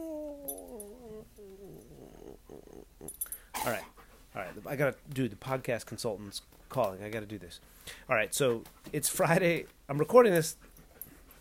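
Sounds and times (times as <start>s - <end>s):
dog whining and groaning while being petted: 0.0s - 4.0s
speech: 3.6s - 10.7s.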